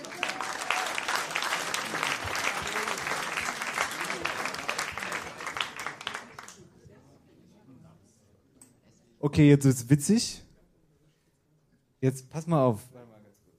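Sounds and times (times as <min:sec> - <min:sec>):
audience applause: 0:00.0 - 0:06.6
speech: 0:09.2 - 0:10.4, 0:12.0 - 0:13.0.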